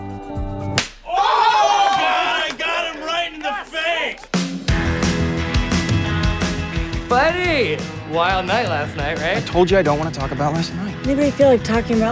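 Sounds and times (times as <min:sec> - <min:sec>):
music: 0:00.0 - 0:00.8, 0:04.3 - 0:12.0
slap across the face: 0:00.8 - 0:01.1
crowd whooping and shouting excitedly: 0:01.0 - 0:07.9
speech: 0:07.6 - 0:12.0.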